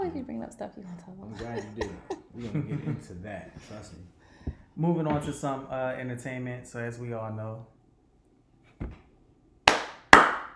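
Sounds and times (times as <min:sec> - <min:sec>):
speech: 0:00.4 - 0:04.2, 0:04.8 - 0:07.8
laughter: 0:01.4 - 0:03.9
hand claps: 0:09.6 - 0:10.5.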